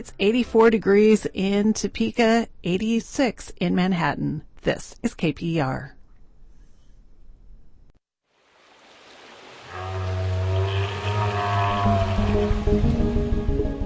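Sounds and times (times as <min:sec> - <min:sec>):
speech: 0:00.0 - 0:06.0
rushing wash of underwater water noise: 0:08.3 - 0:13.8
whale vocalizations underwater, low droning moans: 0:09.6 - 0:13.7.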